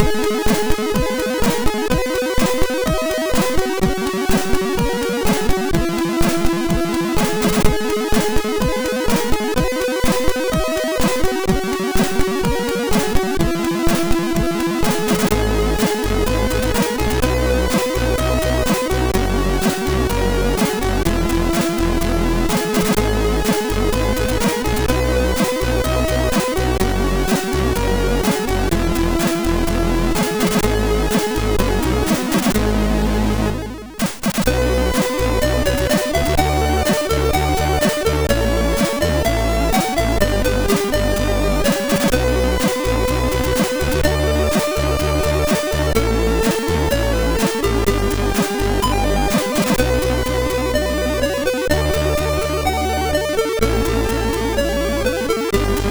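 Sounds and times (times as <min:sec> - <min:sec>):
chiptune music on MOS6581R3 SID chip: 0:00.0 - 0:55.8.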